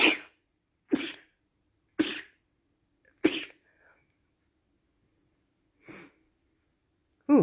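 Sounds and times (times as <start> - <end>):
person sneezing: 0.0 - 1.4, 2.0 - 2.4, 3.2 - 3.6.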